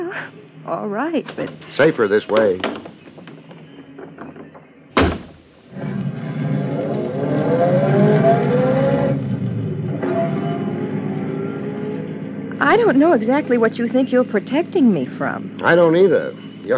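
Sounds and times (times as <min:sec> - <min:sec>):
speech: 0:00.1 - 0:02.8, 0:12.7 - 0:16.7
car door thudding shut: 0:05.0 - 0:05.7
car engine starting, revving and driving off: 0:05.0 - 0:16.7.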